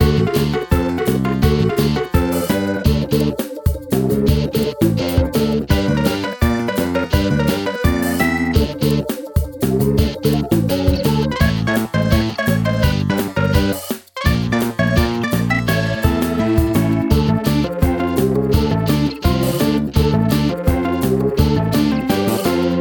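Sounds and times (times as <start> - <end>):
fast music: 0.0 - 22.7.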